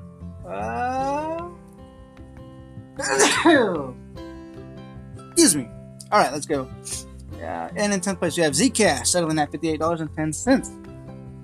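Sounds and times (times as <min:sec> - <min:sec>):
speech: 0:00.5 - 0:00.8, 0:03.0 - 0:04.0, 0:05.4 - 0:10.8
person sneezing: 0:03.0 - 0:03.8.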